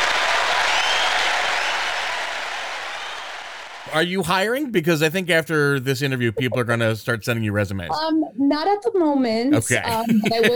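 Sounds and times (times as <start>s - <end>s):
crowd applauding: 0.0s - 4.5s
speech: 3.9s - 10.5s
laughter: 9.6s - 10.5s.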